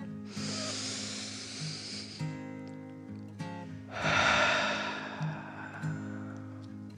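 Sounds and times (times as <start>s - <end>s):
person taking a deep breath in and out: 0.3s - 2.4s, 3.9s - 6.9s.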